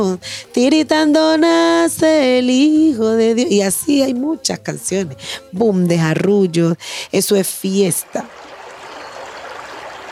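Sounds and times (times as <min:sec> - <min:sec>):
speech: 0:00.1 - 0:08.5
flowing water: 0:07.7 - 0:10.1.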